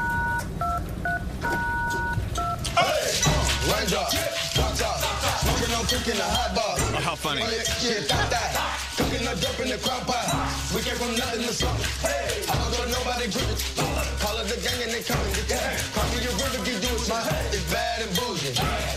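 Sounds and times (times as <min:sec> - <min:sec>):
telephone keypad beeps: 0:00.0 - 0:02.6
rhythmic song from clicks, taps and thumps of staplers, pens, keyboards and phones: 0:00.0 - 0:18.9
speech: 0:05.9 - 0:18.9.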